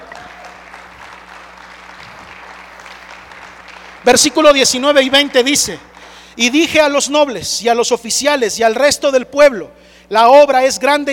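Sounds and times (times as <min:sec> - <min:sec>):
audience applause: 0:00.0 - 0:06.3
speech: 0:04.0 - 0:11.1.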